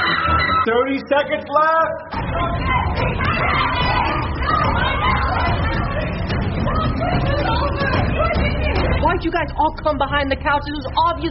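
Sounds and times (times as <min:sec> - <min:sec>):
group of people yelling and shouting excitedly: 0:00.0 - 0:01.0, 0:01.9 - 0:09.2
speech: 0:00.7 - 0:03.7, 0:09.0 - 0:11.3.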